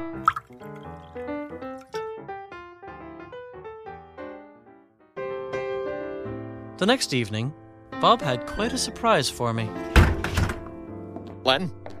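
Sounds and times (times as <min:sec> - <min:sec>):
double drink pouring into a glass: 0:00.0 - 0:02.0
speech: 0:06.8 - 0:10.4, 0:11.5 - 0:11.9.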